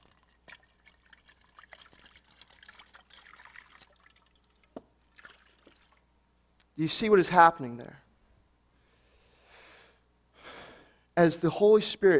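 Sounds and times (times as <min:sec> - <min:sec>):
water pouring into an overflowing cup: 0:00.0 - 0:06.1
speech: 0:06.8 - 0:08.0, 0:11.2 - 0:12.1.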